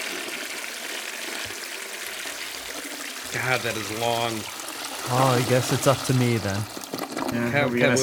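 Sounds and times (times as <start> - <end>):
toilet flushing: 0.0 - 8.0
speech: 3.3 - 8.0.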